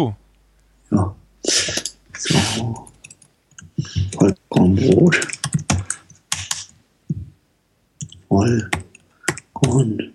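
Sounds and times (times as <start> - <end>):
speech: 0.0 - 0.2, 0.9 - 2.9, 4.6 - 5.4, 8.3 - 8.8, 9.7 - 10.1
computer keyboard clicking: 2.9 - 6.7, 8.0 - 10.1.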